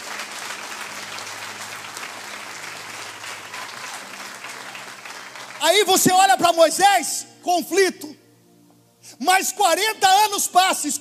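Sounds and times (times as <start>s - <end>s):
audience applauding: 0.0s - 6.3s
speech: 5.6s - 8.2s, 9.2s - 10.9s.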